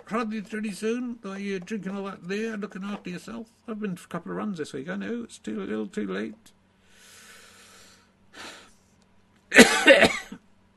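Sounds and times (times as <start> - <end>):
speech: 0.1 - 6.6
breathy inhale: 6.8 - 8.8
harsh coughing: 9.5 - 10.4.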